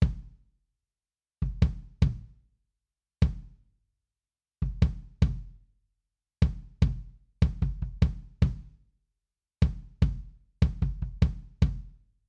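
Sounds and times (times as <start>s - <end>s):
kick drum: 0.0s - 0.4s, 1.4s - 2.4s, 3.2s - 3.6s, 4.6s - 5.6s, 6.4s - 8.8s, 9.6s - 12.0s.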